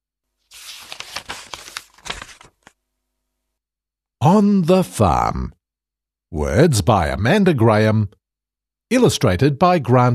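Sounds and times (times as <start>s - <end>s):
book pages turning: 0.4s - 2.8s
speech: 4.3s - 5.6s, 6.3s - 8.2s, 8.9s - 10.1s.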